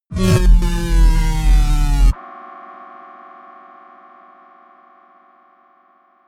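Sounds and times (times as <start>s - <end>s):
synth drop: 0.1s - 2.2s.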